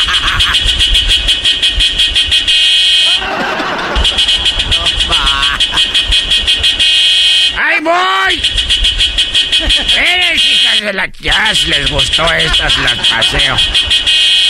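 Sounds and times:
laughter: 0.0 - 0.8, 3.0 - 6.8, 9.5 - 10.8, 11.4 - 14.2
pickup truck car horn honking: 0.0 - 14.4
speech: 10.8 - 14.2.

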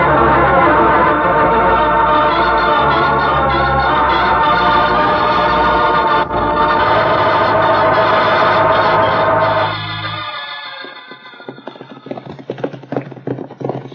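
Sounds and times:
sustained loud music: 0.0 - 10.4
horses galloping in a Western drama: 0.0 - 13.9.

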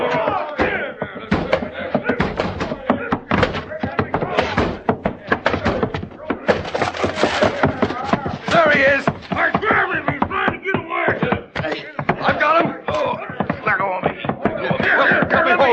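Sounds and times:
crowd of men shouting: 0.0 - 15.7
heavy thuds and bangs against a door as a crowd breaks it down: 0.1 - 15.2.

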